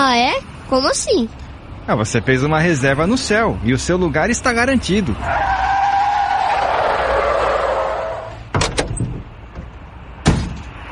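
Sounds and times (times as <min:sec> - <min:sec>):
speech: 0:00.0 - 0:05.7
car tire squeal while braking: 0:05.2 - 0:08.4
car door slamming: 0:08.5 - 0:10.7.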